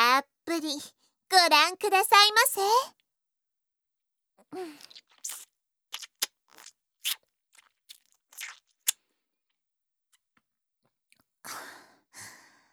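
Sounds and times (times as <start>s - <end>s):
speech: 0.6s - 3.0s, 4.5s - 5.4s
swallowing: 4.7s - 6.7s
wet mouth sucking sounds: 4.7s - 9.0s
chewing: 4.8s - 9.0s.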